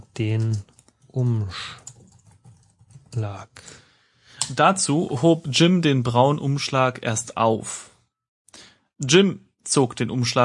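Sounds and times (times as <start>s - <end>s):
speech: 0.2s - 1.8s, 3.2s - 3.8s, 4.5s - 7.9s, 9.0s - 10.4s
typing on a computer keyboard: 0.3s - 3.3s.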